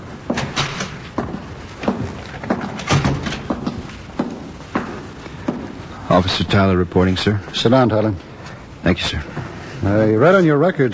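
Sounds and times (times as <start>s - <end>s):
door opening and closing: 0.3s - 3.8s
speech: 6.1s - 10.9s.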